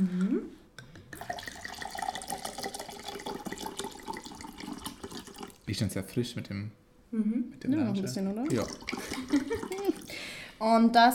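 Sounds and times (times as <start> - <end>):
wine poured into squeezed lemon and orange juice: 1.2 - 5.6, 8.4 - 10.2
speech: 5.7 - 9.4, 10.6 - 11.1.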